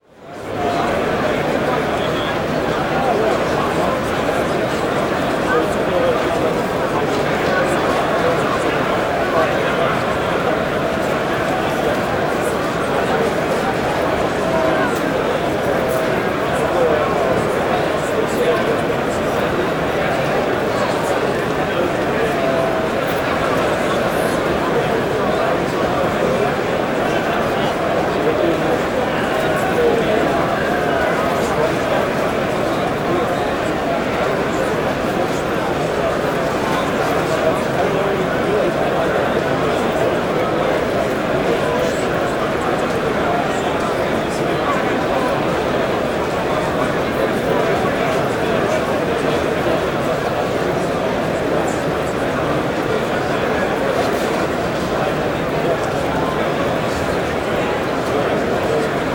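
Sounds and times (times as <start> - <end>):
convention exhibit hall crowd noise: 0.0 - 59.1.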